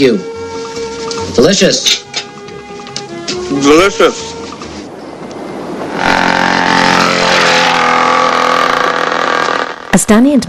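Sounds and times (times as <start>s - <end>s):
speech: 0.0s - 0.3s, 1.4s - 2.0s, 3.5s - 4.4s, 10.0s - 10.4s
dirt bike engine speeding past: 5.9s - 10.0s.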